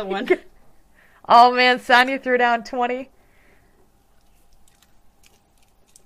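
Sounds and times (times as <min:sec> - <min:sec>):
speech: 0:00.0 - 0:00.5, 0:01.3 - 0:03.2
low steady hiss: 0:00.0 - 0:06.0
crunchy chewing of an edible cricket: 0:04.1 - 0:06.0.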